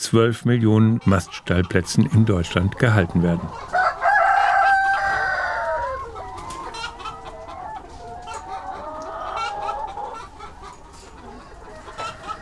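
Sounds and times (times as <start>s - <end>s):
speech: 0.0s - 3.8s
flock of laying hens clucking inside a mobile coop: 0.0s - 12.4s.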